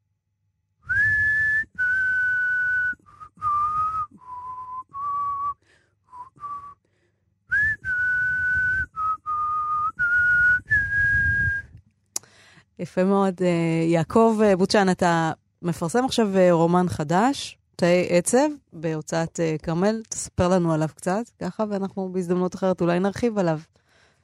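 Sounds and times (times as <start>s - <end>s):
person whistling a short clear melody from a stage play: 0.8s - 6.8s, 7.5s - 11.8s
speech: 12.8s - 23.8s.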